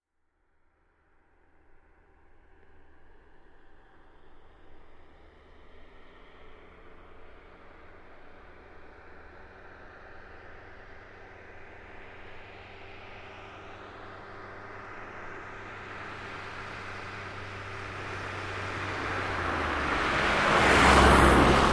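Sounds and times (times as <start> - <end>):
2005 Smart Fortwo car passing by at medium-fast speed: 6.3 - 21.7.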